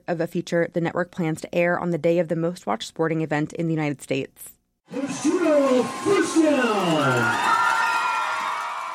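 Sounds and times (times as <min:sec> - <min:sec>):
speech: 0:00.1 - 0:07.6
dense sustained roar of many voices of a football crowd outdoors: 0:04.9 - 0:08.9
overlapping shouts and whoops of a football crowd: 0:04.9 - 0:08.9.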